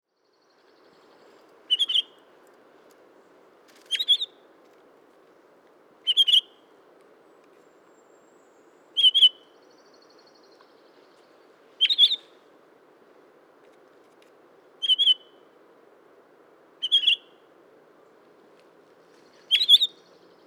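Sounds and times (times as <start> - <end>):
Pine Grosbeak Pinicola enucleator calling: 1.7 - 2.2, 6.0 - 6.5, 9.0 - 9.5, 11.8 - 12.3, 14.8 - 15.3, 16.8 - 17.3, 19.4 - 20.1.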